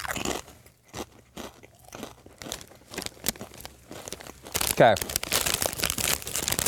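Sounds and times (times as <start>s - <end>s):
chewing: 0.0s - 4.6s
crisp kettle chips crunching: 0.0s - 6.6s
speech: 4.8s - 5.1s.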